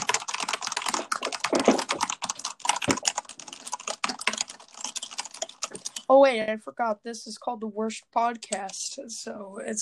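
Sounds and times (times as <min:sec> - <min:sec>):
typing on a noisy computer keyboard: 0:00.0 - 0:06.1, 0:08.5 - 0:08.8
speech: 0:06.1 - 0:09.8.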